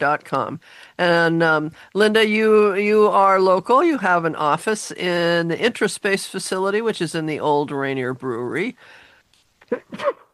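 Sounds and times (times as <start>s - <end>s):
speech: 0.0s - 9.0s, 9.7s - 10.2s
person sneezing: 9.6s - 10.3s.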